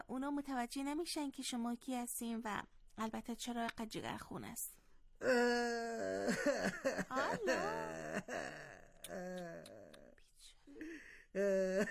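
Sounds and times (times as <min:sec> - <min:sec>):
speech: 0:00.1 - 0:09.8, 0:10.8 - 0:11.9
voice acting out a crying boot character with exaggerated wails: 0:05.2 - 0:10.1, 0:11.4 - 0:11.9.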